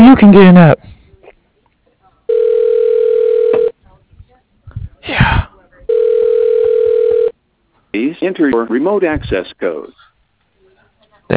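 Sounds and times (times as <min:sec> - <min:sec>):
speech: 0:00.1 - 0:00.9, 0:07.9 - 0:10.0
telephone dial tone: 0:02.3 - 0:03.7, 0:05.9 - 0:07.3.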